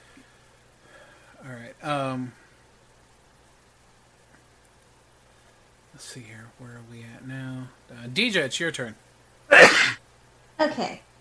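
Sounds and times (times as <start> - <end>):
speech: 1.4 - 2.4, 6.0 - 9.9, 10.6 - 11.1
person sneezing loudly: 9.5 - 10.0.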